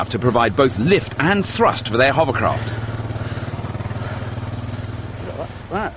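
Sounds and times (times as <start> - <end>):
speech: 0.0 - 2.9
small lawnmower engine running: 0.0 - 5.9.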